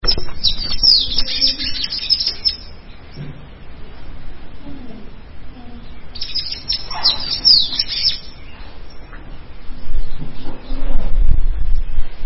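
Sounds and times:
bird song in rapid high twittering chirps: 0.0s - 3.2s, 5.8s - 9.2s
low rumbling noise: 0.0s - 12.2s.

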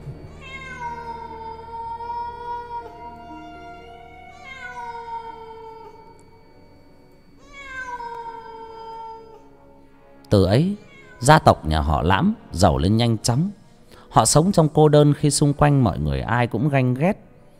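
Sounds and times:
cat meowing at night: 0.2s - 6.4s, 7.4s - 9.5s, 10.7s - 11.5s
speech: 10.3s - 17.2s.

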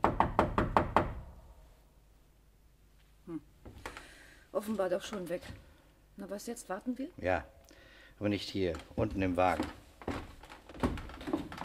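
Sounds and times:
knocking on a door: 0.0s - 1.3s
speech: 4.6s - 7.6s, 8.2s - 9.8s.

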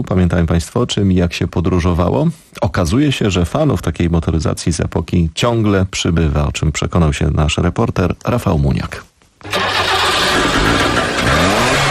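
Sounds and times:
speech: 0.0s - 9.7s
Trabant two-stroke car engine revving: 9.5s - 11.8s.

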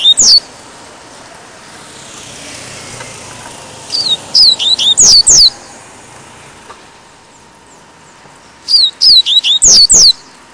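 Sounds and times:
Double-collared Seedeater singing high whistled notes: 0.0s - 0.5s, 3.9s - 5.8s, 8.5s - 10.4s.

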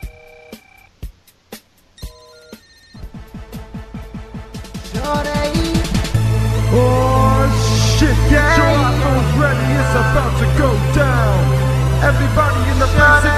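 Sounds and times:
bright ringtone-like electronic tones of a parody rap song: 0.0s - 0.9s, 2.0s - 3.1s
driving beat of a parody rap song: 0.0s - 13.3s.

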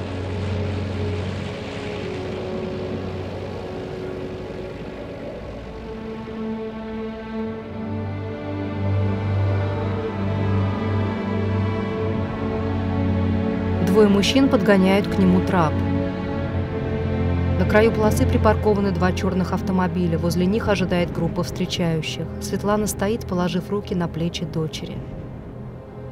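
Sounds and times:
aircraft engines droning as the plane approaches along an airfield runway: 0.0s - 26.1s
speech: 14.0s - 15.9s, 17.7s - 25.2s.

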